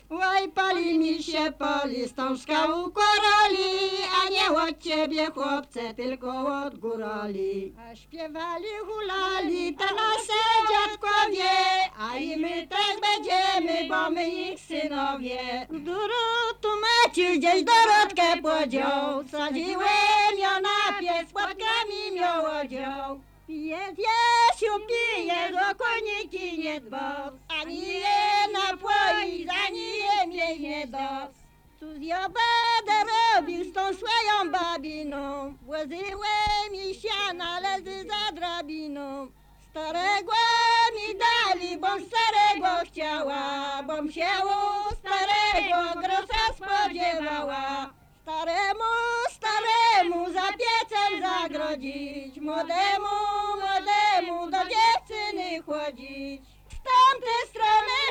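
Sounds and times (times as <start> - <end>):
folk singing: 0.0 - 58.0.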